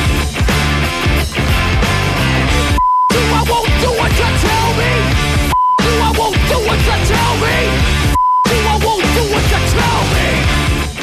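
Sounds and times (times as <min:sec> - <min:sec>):
loud dense rock track: 0:00.0 - 0:11.0
short steady high-pitched censor bleep: 0:02.8 - 0:03.2, 0:05.5 - 0:06.1, 0:08.2 - 0:08.6.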